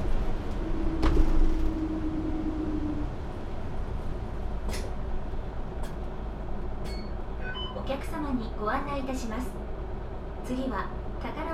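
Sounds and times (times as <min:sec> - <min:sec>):
bus engine whine: 0:00.0 - 0:07.4
city bus interior rumble driving between stops in Nagasaki Japan: 0:00.0 - 0:11.5
speech: 0:08.6 - 0:09.6, 0:10.5 - 0:11.5.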